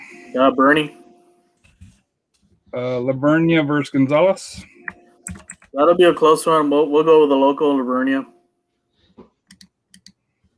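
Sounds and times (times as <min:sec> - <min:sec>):
speech: 0:00.3 - 0:01.0, 0:02.7 - 0:08.3
typing on a computer keyboard: 0:05.2 - 0:05.8.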